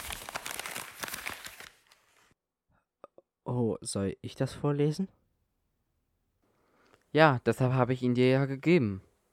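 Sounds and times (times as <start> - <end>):
sheet of paper rustling as it is handed over: 0.0 - 2.3
speech: 3.5 - 5.2, 7.1 - 9.1.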